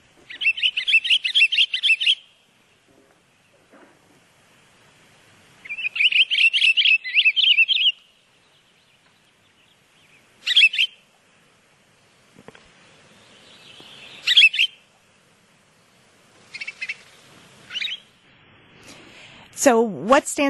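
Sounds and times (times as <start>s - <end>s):
pine grosbeak singing warbling phrases and whistled notes: 0.2s - 3.6s, 5.6s - 11.0s, 13.0s - 14.9s, 15.8s - 18.2s
speech: 19.6s - 20.4s.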